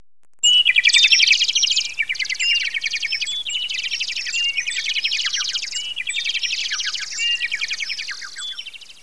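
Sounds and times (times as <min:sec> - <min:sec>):
bird twittering chirps: 0:00.4 - 0:09.0.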